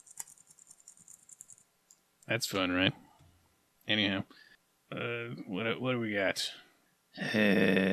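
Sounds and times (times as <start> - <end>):
computer keyboard being cleaned with light plastic clicks and rattles: 0.0 - 1.7
speech: 2.3 - 3.0, 3.9 - 6.6, 7.2 - 7.9.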